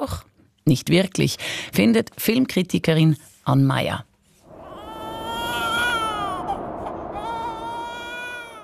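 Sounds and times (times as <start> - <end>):
speech: 0.0 - 4.1
newborn baby crying in the Andes mountains: 4.6 - 8.6.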